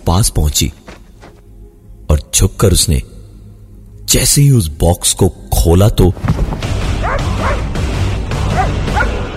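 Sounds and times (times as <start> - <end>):
speech: 0.1 - 0.9, 2.1 - 3.1, 4.1 - 6.6
dog whining bark: 7.0 - 7.6
dog barking and yipping while running out of a box: 7.0 - 7.7, 8.5 - 9.2.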